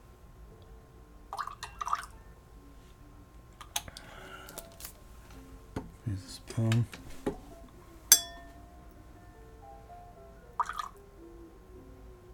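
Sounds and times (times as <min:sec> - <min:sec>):
water dripping into a glass of whiskey: 0:01.4 - 0:02.1, 0:10.6 - 0:11.0
speech: 0:06.6 - 0:07.0.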